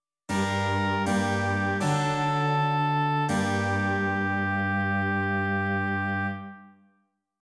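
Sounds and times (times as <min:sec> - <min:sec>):
continuo accompaniment: 0:00.3 - 0:06.6.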